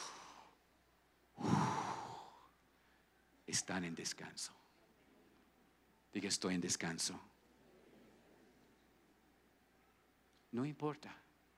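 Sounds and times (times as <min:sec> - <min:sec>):
deep breathing during a guided relaxation exercise: 0:00.0 - 0:00.6, 0:01.4 - 0:03.2
speech: 0:03.5 - 0:04.7, 0:06.1 - 0:07.3, 0:10.5 - 0:11.3.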